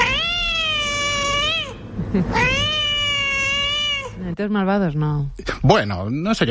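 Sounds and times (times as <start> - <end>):
cat meowing loudly: 0.0 - 4.2
speech: 2.1 - 2.5, 4.4 - 6.4.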